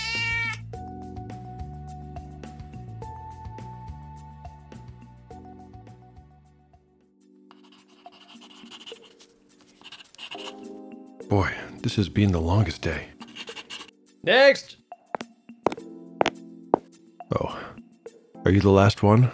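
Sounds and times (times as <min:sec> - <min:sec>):
cat meowing loudly: 0:00.0 - 0:00.6
scratchy rustling noise: 0:07.5 - 0:10.7, 0:13.1 - 0:13.9
speech: 0:11.3 - 0:13.2, 0:14.2 - 0:14.8, 0:18.5 - 0:19.3.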